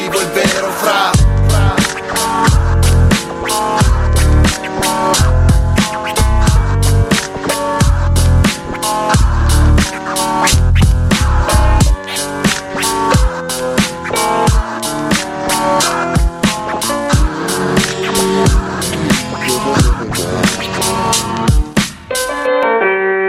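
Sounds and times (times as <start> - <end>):
DJ turntable scratch: 0.0 - 22.3
loud steady beat-driven track: 0.0 - 23.1.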